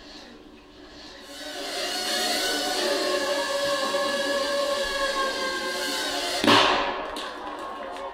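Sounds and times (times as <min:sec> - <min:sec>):
high-pitched mechanical whir from a palm-sized device: 0:00.6 - 0:07.0
3-gram shaped explosive charge detonating against a dummy's skull: 0:05.8 - 0:07.4.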